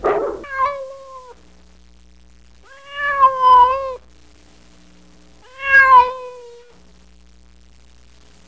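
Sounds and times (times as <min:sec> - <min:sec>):
single bark: 0:00.0 - 0:00.5
cat meowing: 0:00.0 - 0:01.4, 0:02.7 - 0:04.0, 0:05.4 - 0:06.7.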